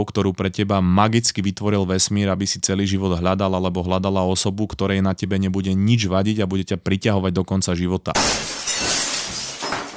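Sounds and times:
speech: 0:00.0 - 0:09.0
glass shattering: 0:08.2 - 0:09.9.

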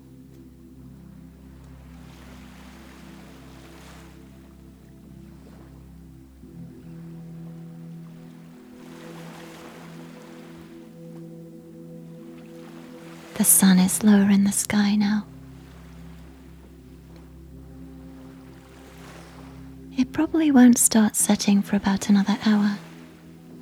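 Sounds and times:
rushing washes of ocean swell: 0:00.0 - 0:23.6
steady low droning hum: 0:00.0 - 0:23.6
speech: 0:13.4 - 0:15.3, 0:20.3 - 0:22.8.

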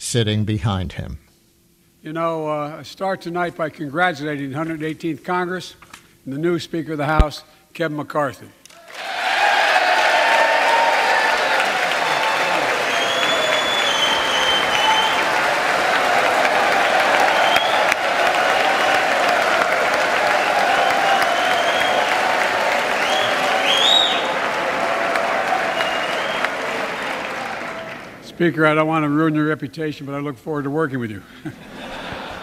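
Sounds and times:
speech: 0:00.1 - 0:01.2, 0:02.0 - 0:09.0, 0:28.4 - 0:31.8
large crowd applauding in a big hall: 0:08.8 - 0:28.3
people whistling: 0:12.0 - 0:15.4, 0:16.8 - 0:19.2, 0:20.2 - 0:24.5, 0:25.6 - 0:28.1
laughter: 0:31.4 - 0:32.4.

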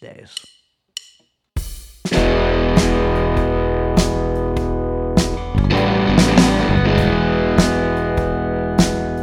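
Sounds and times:
speech: 0:00.2 - 0:00.5
steady drum hits: 0:01.6 - 0:09.2
loud distorted band track: 0:02.1 - 0:09.2.

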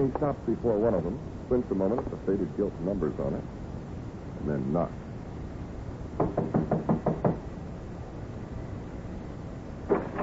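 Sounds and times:
speech: 0:00.0 - 0:03.6, 0:04.4 - 0:05.0
knocking on a warped dark-stained wooden door in a shabby hallway: 0:06.2 - 0:07.4.

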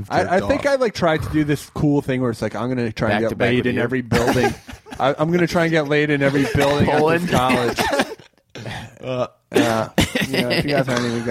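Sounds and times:
speech: 0:00.0 - 0:08.0, 0:09.0 - 0:11.2
laughter: 0:04.1 - 0:08.4, 0:09.6 - 0:11.2
person coughing: 0:06.6 - 0:11.2
person clearing throat: 0:07.1 - 0:11.2.

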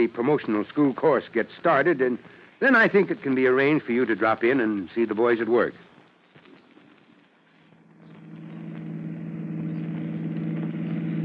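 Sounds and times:
speech: 0:00.0 - 0:05.9
car engine running while driving: 0:07.8 - 0:11.2.

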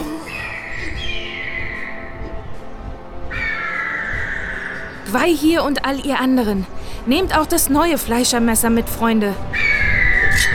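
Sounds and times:
eagles calling with harsh cries: 0:00.0 - 0:02.6, 0:03.3 - 0:05.8, 0:09.5 - 0:10.5
speech: 0:05.1 - 0:09.6.

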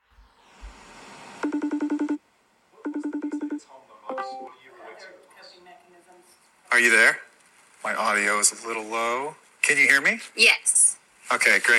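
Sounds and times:
speech: 0:01.4 - 0:01.9, 0:06.8 - 0:11.7
video call ringtone with pulsed electronic tones: 0:01.4 - 0:02.2, 0:02.8 - 0:04.6.

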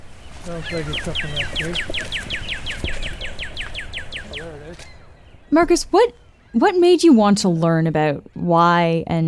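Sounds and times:
cardinal singing clear ringing whistled notes: 0:00.2 - 0:07.0
speech: 0:00.4 - 0:02.5, 0:04.4 - 0:04.9, 0:05.5 - 0:09.2.

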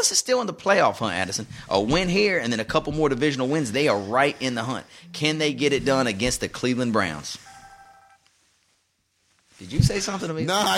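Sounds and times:
speech: 0:00.0 - 0:07.5, 0:09.6 - 0:10.7
mobile phone ringing with electronic ringtone: 0:07.4 - 0:08.2.

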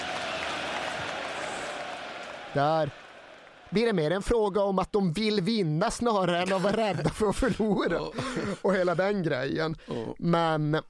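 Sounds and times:
large stadium crowd roaring and cheering after a goal: 0:00.0 - 0:04.4
speech: 0:02.5 - 0:03.0, 0:03.7 - 0:10.8.

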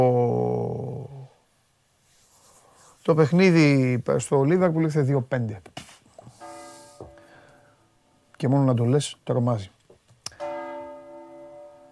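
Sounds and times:
faint rustle: 0:01.4 - 0:10.3
speech: 0:03.1 - 0:05.9, 0:08.4 - 0:09.8
church bell strike: 0:10.4 - 0:11.9.

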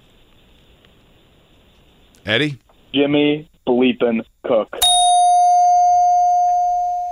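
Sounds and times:
speech: 0:02.3 - 0:04.9
single bright bell ringing: 0:04.8 - 0:07.0.

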